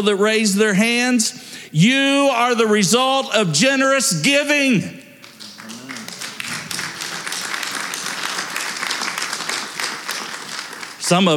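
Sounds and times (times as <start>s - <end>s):
speech: 0.0s - 5.0s, 11.1s - 11.3s
scattered half-hearted applause from a crowd: 5.2s - 11.3s
brief voice murmuring: 5.6s - 6.8s.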